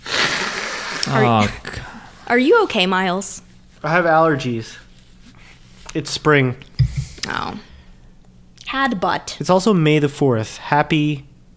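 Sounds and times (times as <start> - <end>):
person blowing nose: 0.0 - 1.0
speech: 1.1 - 4.8, 6.0 - 7.7, 8.7 - 11.3.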